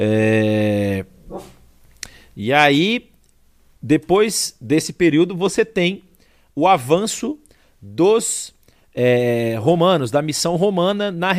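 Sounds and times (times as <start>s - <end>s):
speech: 0.0s - 0.6s, 2.4s - 3.1s, 3.8s - 11.3s
dog whining: 1.3s - 1.6s.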